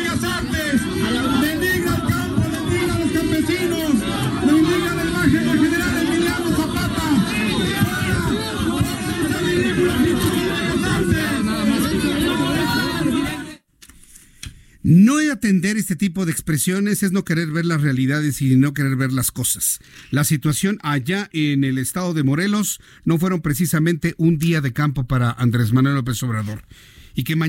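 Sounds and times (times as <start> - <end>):
dense agitated crowd shouting with overlapping raised voices: 0.0 - 13.6
speech: 15.4 - 27.4.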